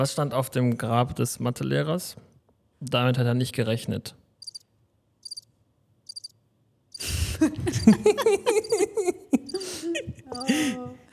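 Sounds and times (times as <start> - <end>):
speech: 0.0 - 4.2, 7.4 - 9.2, 9.9 - 11.0
cricket chirping sound effect: 4.4 - 7.0
people laughing: 7.0 - 11.1.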